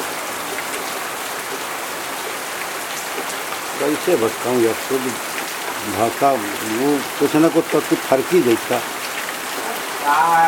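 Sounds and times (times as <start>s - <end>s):
steady rain falling: 0.0s - 10.4s
speech: 3.8s - 8.9s, 10.0s - 10.4s.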